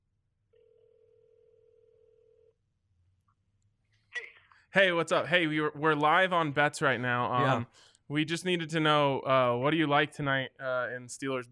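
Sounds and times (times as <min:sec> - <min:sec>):
telephone ringback tone of an outgoing call: 0:00.6 - 0:02.5
speech: 0:04.7 - 0:11.5.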